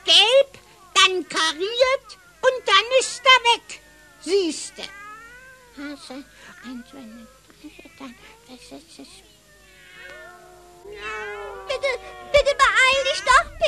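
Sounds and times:
several cats meowing and caterwauling: 0.0s - 8.6s, 9.2s - 13.6s
speech: 5.8s - 9.4s, 10.8s - 12.2s.

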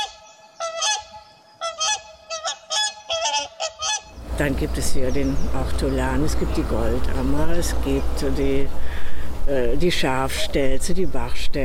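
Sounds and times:
wild geese honking in the Elbe river floodplain: 0.0s - 4.2s
speech: 4.4s - 8.9s, 9.5s - 11.6s.

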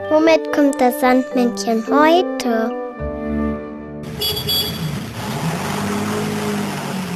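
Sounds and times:
speech: 0.3s - 2.8s
car engine rumbling while driving along: 4.1s - 7.1s.

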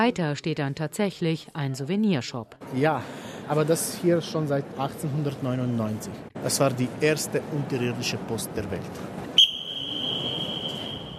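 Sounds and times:
speech: 0.0s - 9.3s
man whistling echoing in a cave chamber: 9.4s - 11.1s.

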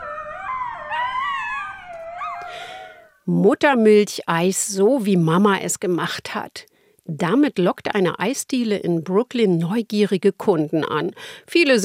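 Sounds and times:
coyotes howling and yipping in a city park: 0.0s - 3.2s
speech: 3.3s - 11.8s.

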